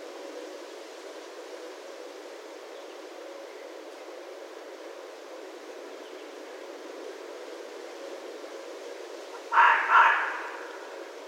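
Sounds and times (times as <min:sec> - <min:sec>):
low background noise: 0:00.0 - 0:11.2
red fox double bark: 0:09.3 - 0:10.9.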